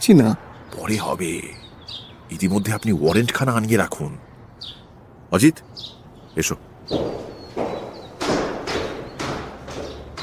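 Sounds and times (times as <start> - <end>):
speech: 0.0 - 1.6, 2.3 - 7.3
hurried footsteps climbing stairs: 6.9 - 10.2
knocking on a door: 6.9 - 10.2.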